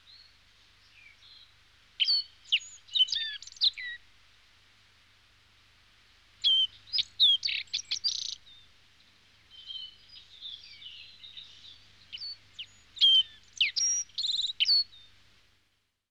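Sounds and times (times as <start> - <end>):
small birds chirping and twittering: 0.0 - 4.0, 6.4 - 15.2.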